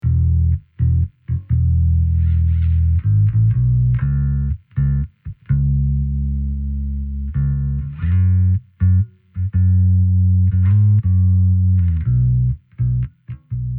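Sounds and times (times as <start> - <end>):
Jazz Bass guitar: 0.0 - 13.7.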